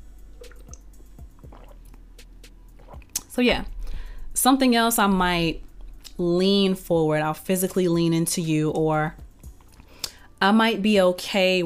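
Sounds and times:
faint steady hum: 0.0s - 10.5s
person sipping water: 0.4s - 4.2s
speech: 3.4s - 3.7s, 4.4s - 5.6s, 6.2s - 9.2s, 10.4s - 11.6s.

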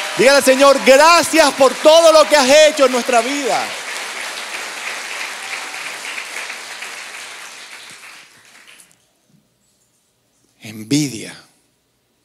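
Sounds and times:
audience applauding: 0.0s - 9.0s
speech: 0.2s - 3.8s, 10.7s - 11.5s.

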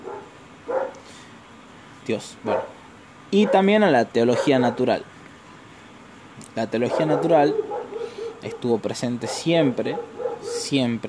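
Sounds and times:
dog barking: 0.0s - 1.1s, 2.4s - 2.8s, 3.4s - 5.0s, 6.8s - 10.8s
speech: 2.1s - 5.1s, 6.6s - 7.6s, 8.4s - 11.0s.

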